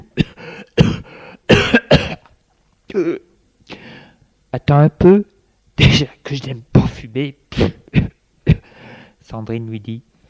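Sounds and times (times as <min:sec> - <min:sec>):
man coughing: 0:00.0 - 0:02.3, 0:02.9 - 0:03.3, 0:07.5 - 0:08.8
speech: 0:03.0 - 0:03.3, 0:04.5 - 0:08.0, 0:09.3 - 0:10.1.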